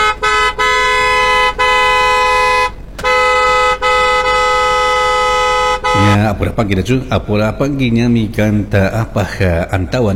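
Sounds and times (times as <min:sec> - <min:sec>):
car horn honking: 0:00.0 - 0:06.4
speech: 0:06.6 - 0:10.1.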